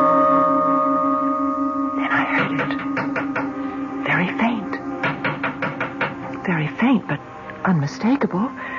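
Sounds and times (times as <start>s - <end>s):
steady low hum: 0.0s - 7.5s
sharp light taps on a window pane: 2.2s - 3.6s, 5.0s - 6.4s
speech: 7.9s - 8.7s.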